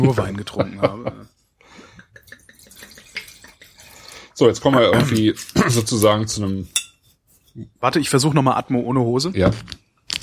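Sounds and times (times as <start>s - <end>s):
speech: 0.0s - 1.2s, 4.4s - 6.8s, 7.6s - 9.8s
laughter: 0.0s - 1.3s, 1.9s - 3.9s
water poured into a wine glass: 2.1s - 4.4s.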